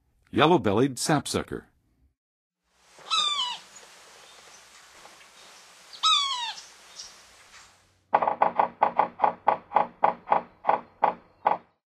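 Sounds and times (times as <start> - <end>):
Yellow-bellied Sapsucker calling in North America: 3.0 - 4.7, 5.3 - 11.8.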